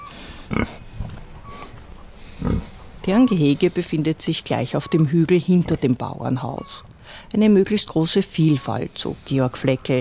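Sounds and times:
black-and-white Berkshire pigs grunting on a farm: 0.4 - 3.5
speech: 3.1 - 9.9.

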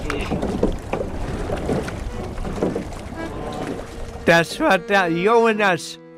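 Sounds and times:
rowing boat oars dipping and splashing through the water: 0.0 - 5.5
speech: 4.3 - 6.0.

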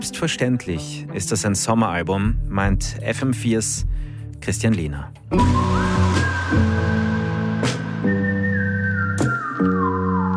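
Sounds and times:
speech: 0.0 - 6.0
steady instrumental backing music: 0.0 - 10.3
clear whistled melody: 5.3 - 10.3.

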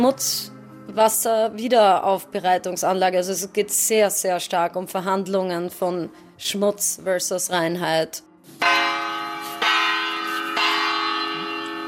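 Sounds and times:
speech: 0.0 - 8.8
carillon bells ringing: 8.6 - 11.8.

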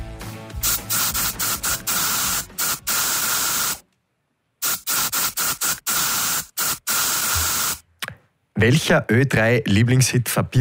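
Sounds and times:
aerosol deodorant spray can hissing in bursts: 0.6 - 3.8, 4.6 - 7.8
speech: 8.6 - 10.5.

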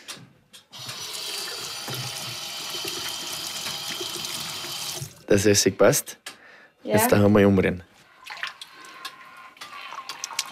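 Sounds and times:
tap water running for hand washing: 0.7 - 5.3, 8.3 - 10.4
speech: 5.3 - 6.3, 6.9 - 7.9.

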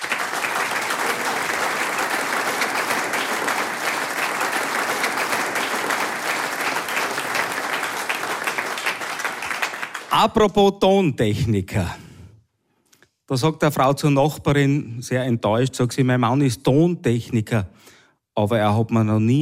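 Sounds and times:
audience applause: 0.0 - 10.3
speech: 10.2 - 12.0, 13.3 - 19.3.

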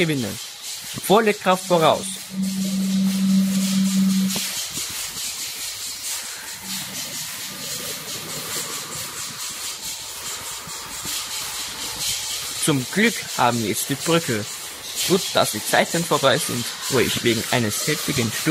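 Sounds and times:
speech: 0.0 - 2.6, 12.7 - 18.4
steam locomotive fired up hard with double steam hissing: 0.0 - 18.4
steady low droning tone: 1.7 - 4.6, 6.6 - 8.1.

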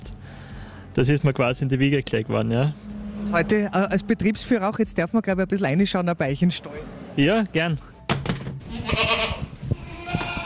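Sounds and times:
speech: 1.0 - 7.9
goats bleating inside a barn on a goat farm: 8.7 - 10.4.

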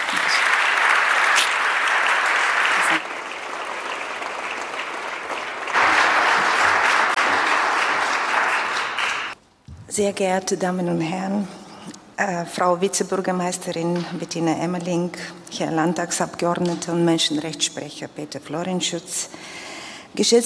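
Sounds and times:
sizable audience applauding a speaker onto a stage: 0.0 - 9.4
speech: 10.0 - 11.6, 12.2 - 20.4.

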